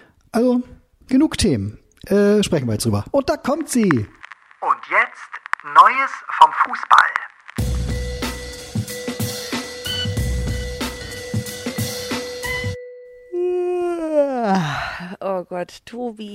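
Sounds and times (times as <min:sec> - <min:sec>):
speech: 0:00.4 - 0:07.0, 0:15.0 - 0:16.3
upbeat music with a sustained tone: 0:07.6 - 0:13.0
person yawning: 0:13.3 - 0:15.2.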